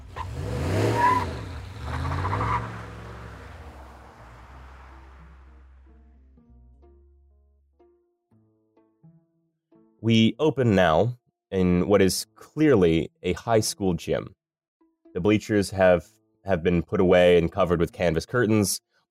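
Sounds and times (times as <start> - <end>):
truck tires squealing: 0.0 - 5.7
truck engine revving loudly and roaring away: 0.0 - 6.2
speech: 10.0 - 14.4, 15.2 - 19.1.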